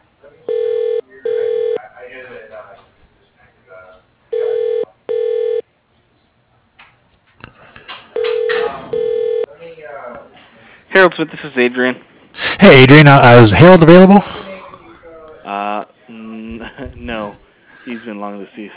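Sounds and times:
telephone call ringing through to a company's operator: 0.5 - 1.8, 4.3 - 5.6, 8.2 - 9.5
speech: 11.0 - 14.3, 18.0 - 18.7.

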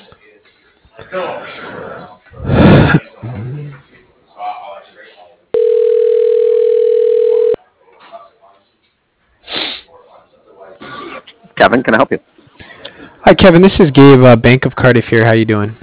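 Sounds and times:
voices: 0.0 - 5.5, 7.6 - 14.2
speech: 1.0 - 2.0, 11.6 - 12.3, 13.3 - 15.8
telephone tone during call transfer to a cell phone: 5.6 - 7.6.

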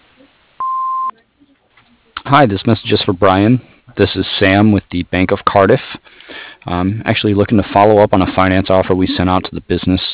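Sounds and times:
answering machine beep: 0.6 - 1.1
speech: 2.3 - 10.1.

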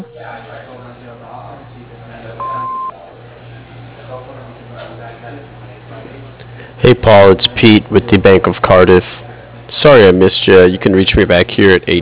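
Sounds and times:
low constant hum: 0.0 - 12.0
answering machine beep: 2.4 - 3.0
speech: 6.8 - 9.2, 9.8 - 12.0.

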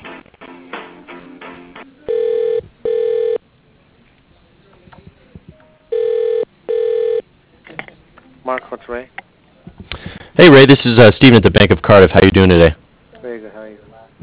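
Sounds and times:
telephone ringback tone while a call is transferred to voicemail: 2.1 - 3.4, 5.9 - 7.2
speech: 8.5 - 9.2, 10.4 - 12.8.

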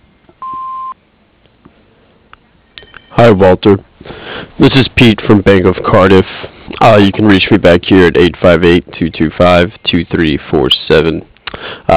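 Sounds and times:
electronic answering machine beep: 0.4 - 1.0
faint hiss of phone line noise: 0.4 - 1.0
speech: 3.1 - 4.0, 4.6 - 11.9.

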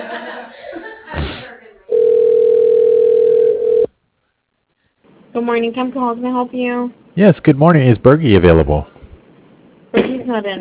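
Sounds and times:
telephone line tone while a call is transferred: 1.9 - 3.9
speech: 5.4 - 8.9, 10.3 - 10.5.

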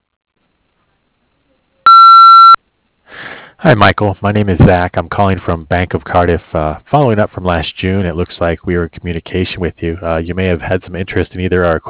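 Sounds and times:
electronic voicemail beep: 1.9 - 2.6
speech: 3.6 - 11.8.

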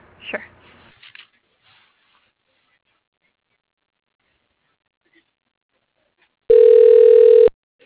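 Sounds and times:
telephone line electronic tone connecting to voicemail: 6.5 - 7.6.

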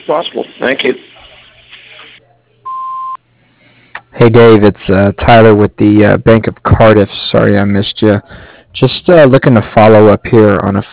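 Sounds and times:
speech: 0.1 - 1.1, 4.2 - 10.9
voicemail answering machine beep on a tree service business line: 2.6 - 3.2.

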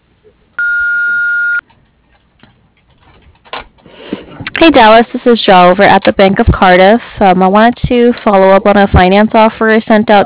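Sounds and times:
answering machine beep: 0.6 - 1.6
speech: 4.6 - 10.2.

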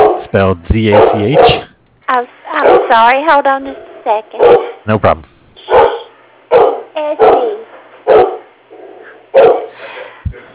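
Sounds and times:
dog barking at someone entering an office: 0.0 - 0.3, 0.9 - 1.7, 2.5 - 3.1, 4.4 - 4.8, 5.6 - 9.8
speech: 0.3 - 7.6, 9.3 - 9.6.

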